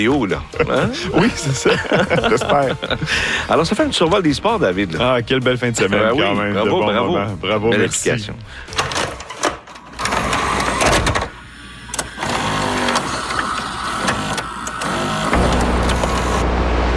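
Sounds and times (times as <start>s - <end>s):
speech: 0.0s - 8.9s
laughter: 0.3s - 3.8s
old VHS video cassette player whirring and clunking: 8.7s - 16.9s.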